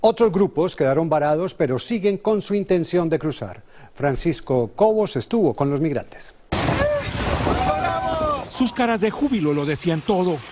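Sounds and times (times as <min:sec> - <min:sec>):
speech: 0:00.0 - 0:06.8, 0:08.6 - 0:10.5
people splashing into river water: 0:06.5 - 0:09.3
moving river water churning: 0:06.5 - 0:10.5
people shouting excitedly: 0:06.7 - 0:08.7.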